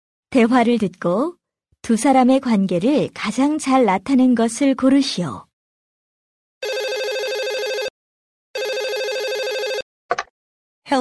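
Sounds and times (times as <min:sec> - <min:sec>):
speech: 0:00.3 - 0:05.5
telephone ringing: 0:06.6 - 0:08.0, 0:08.6 - 0:09.9.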